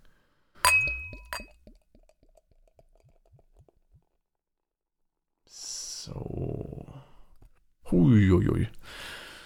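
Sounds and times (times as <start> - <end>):
glass clinks: 0.6 - 1.6
speech: 7.9 - 9.0.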